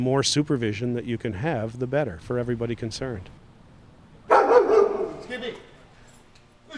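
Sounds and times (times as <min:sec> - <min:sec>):
speech: 0:00.0 - 0:03.4
guard dogs barking in security company kennels, German Shepherds and Rottweilers: 0:04.3 - 0:05.5.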